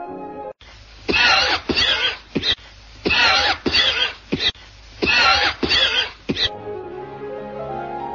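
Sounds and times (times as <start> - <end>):
heavy wet chronic smoker's cough: 1.1 - 6.5.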